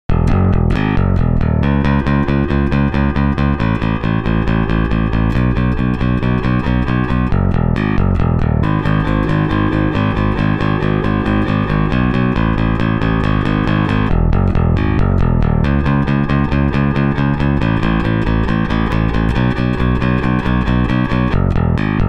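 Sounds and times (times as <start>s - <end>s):
bass guitar direct input: 0.0s - 22.0s.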